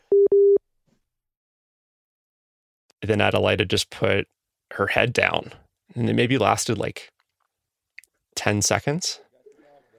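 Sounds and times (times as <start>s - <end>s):
call-ended tone after a phone hang-up: 0.1s - 0.6s
speech: 3.0s - 7.2s, 8.4s - 9.2s.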